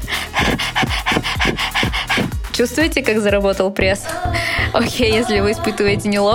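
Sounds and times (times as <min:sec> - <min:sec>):
person panting like a dog as a breathing exercise: 0:00.0 - 0:02.5
speech: 0:02.6 - 0:06.3.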